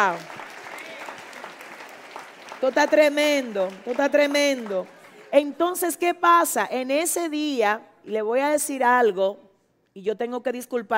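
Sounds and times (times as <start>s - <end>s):
speech: 0.0s - 0.3s, 2.6s - 9.4s, 10.0s - 10.9s
audience applauding during a sermon: 0.0s - 5.5s.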